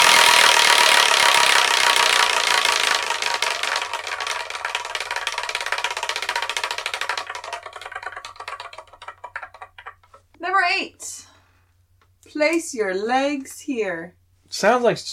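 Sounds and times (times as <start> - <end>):
wheel of fortune prize wheel spinning with rattling clicks: 0.0 - 10.3
speech: 12.4 - 15.1.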